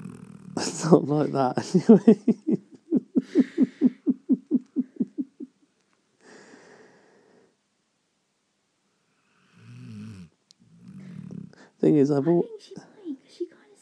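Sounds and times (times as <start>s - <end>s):
voice imitating a 2-year-old dog's snoring breath: 0.0s - 1.2s, 9.4s - 11.7s
speech: 0.6s - 2.7s, 11.8s - 12.9s
laughter: 0.6s - 5.5s.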